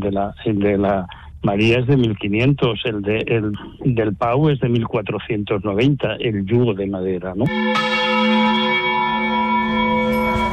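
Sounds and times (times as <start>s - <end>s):
speech: 0.1s - 8.4s
large church bell ringing: 7.5s - 10.5s.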